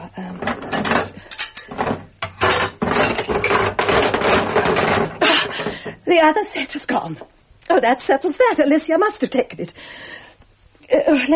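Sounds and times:
loose items clattering in a wooden kitchen drawer being emptied: 0:00.4 - 0:05.9
speech: 0:06.2 - 0:10.2, 0:10.9 - 0:11.3.

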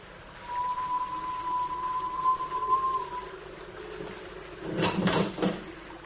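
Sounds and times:
long steady whistle: 0:00.4 - 0:04.4.

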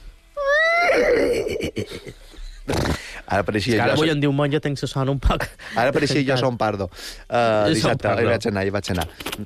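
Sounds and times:
person imitating horse neighing: 0:00.4 - 0:02.1
speech: 0:01.6 - 0:09.4.

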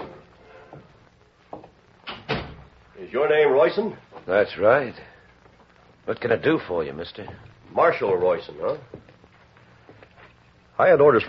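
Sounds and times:
faint steady hiss: 0:00.0 - 0:11.2
office door opening: 0:02.0 - 0:02.7
speech: 0:03.1 - 0:05.1, 0:06.1 - 0:09.0, 0:10.8 - 0:11.2.

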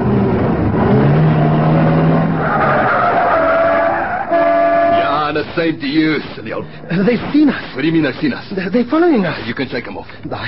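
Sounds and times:
car engine running loud while speeding through a red light: 0:00.0 - 0:08.3
car tires squealing in a long continuous skid: 0:02.2 - 0:05.2
speech: 0:05.6 - 0:10.4.

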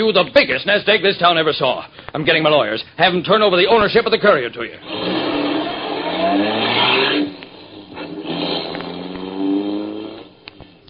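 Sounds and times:
speech: 0:00.0 - 0:05.2, 0:06.2 - 0:06.7
car engine revving as the car drives off: 0:04.8 - 0:10.6.

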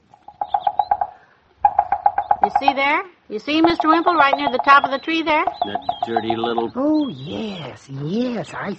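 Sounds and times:
red-headed woodpecker drumming on an oak tree: 0:00.0 - 0:07.5
speech: 0:02.5 - 0:08.7.

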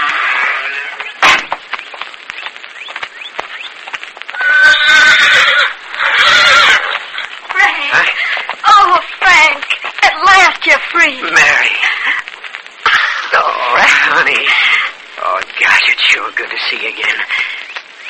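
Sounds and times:
rustling: 0:00.0 - 0:18.0
horse neighing outside a prison gate: 0:04.4 - 0:07.0.

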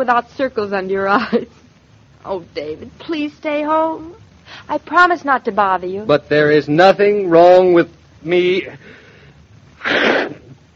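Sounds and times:
speech: 0:00.0 - 0:01.6, 0:02.2 - 0:09.0
loud sneeze: 0:09.8 - 0:10.6.

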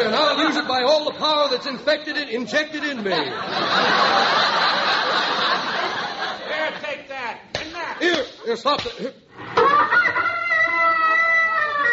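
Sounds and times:
laughter: 0:00.0 - 0:07.2, 0:09.4 - 0:11.9
speech: 0:00.6 - 0:05.3, 0:08.0 - 0:09.2
chickens squawking: 0:09.5 - 0:11.9.

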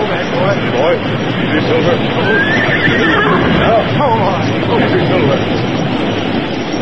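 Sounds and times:
people talking: 0:00.0 - 0:05.7
loud steady rushing roar: 0:00.6 - 0:05.5
horses neighing and whinnying: 0:01.6 - 0:05.2.

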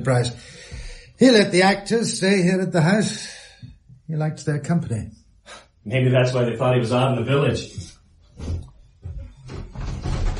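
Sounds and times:
speech: 0:00.0 - 0:00.6, 0:01.2 - 0:08.6
locked door being tried, rattling: 0:09.4 - 0:10.3.

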